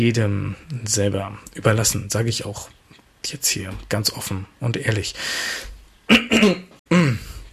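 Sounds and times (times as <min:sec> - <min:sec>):
speech: 0:00.0 - 0:06.6
throaty coughs: 0:06.1 - 0:07.4.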